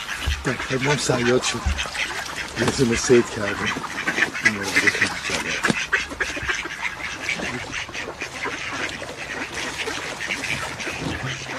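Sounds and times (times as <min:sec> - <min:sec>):
ducks quacking at a duck hunt with decoys: 0:00.0 - 0:11.5
speech: 0:00.4 - 0:06.4.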